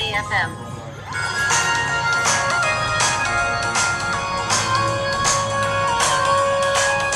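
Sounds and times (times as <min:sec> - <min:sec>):
electronic music playing through small phone speakers: 0:00.0 - 0:07.1
speech: 0:00.2 - 0:01.3.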